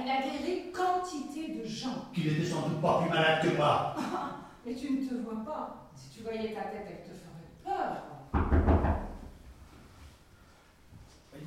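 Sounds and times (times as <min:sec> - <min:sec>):
speech: 0:01.1 - 0:08.7
laughter: 0:02.2 - 0:04.5
dull heavy knocks on a door: 0:08.4 - 0:09.3.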